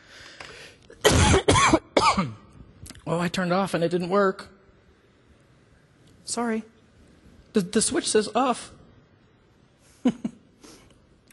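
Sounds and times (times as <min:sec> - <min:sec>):
person coughing: 0:01.0 - 0:02.5
speech: 0:02.2 - 0:02.4, 0:03.1 - 0:04.6, 0:06.3 - 0:06.7, 0:07.6 - 0:08.8, 0:10.0 - 0:10.3.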